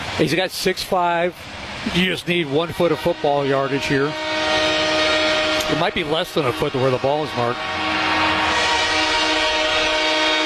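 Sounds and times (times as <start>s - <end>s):
speech: 0.2s - 4.6s, 5.7s - 7.9s
train horn blaring: 2.6s - 10.4s.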